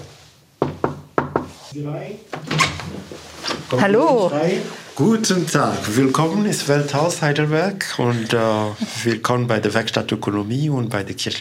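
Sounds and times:
knocking on a wooden office door: 0.6 - 1.5
speech: 1.8 - 11.3.

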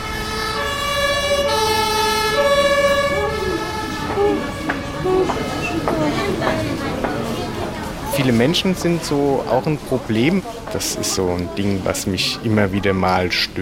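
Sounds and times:
two-tone fire engine siren wailing in a traffic jam: 0.0 - 6.5
rumbling traffic on a busy main road feeding a motorway: 0.0 - 13.6
speech: 8.2 - 13.6.

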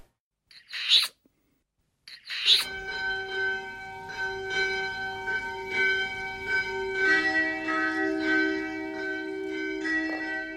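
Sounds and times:
brief bird-like calls: 0.5 - 1.2, 2.1 - 2.7
church bells ringing: 2.7 - 10.5.

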